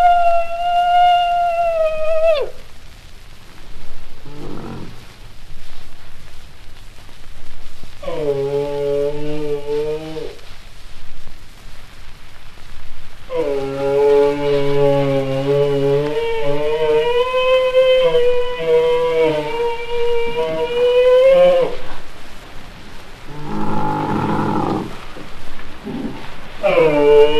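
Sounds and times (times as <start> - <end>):
background rumble: 0.0 - 27.3
Bactrian camel moaning call: 4.2 - 5.1, 8.0 - 10.4, 13.3 - 22.1, 23.3 - 25.2, 25.8 - 27.3.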